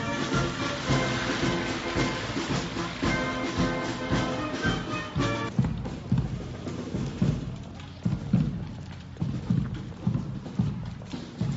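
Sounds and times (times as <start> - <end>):
parade band playing: 0.0 - 5.6
parade crowd noise: 0.0 - 11.5
rhythmic drum thumps: 0.0 - 11.5.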